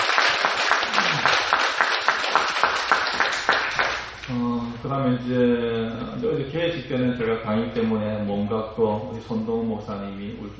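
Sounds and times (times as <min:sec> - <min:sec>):
audience applause: 0:00.0 - 0:04.2
speech: 0:04.3 - 0:10.5.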